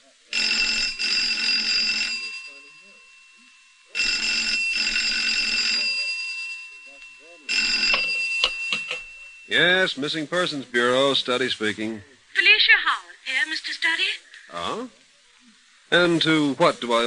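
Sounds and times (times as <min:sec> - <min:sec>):
telephone ringing: 0:00.3 - 0:10.2
speech: 0:09.5 - 0:15.0, 0:15.9 - 0:17.0.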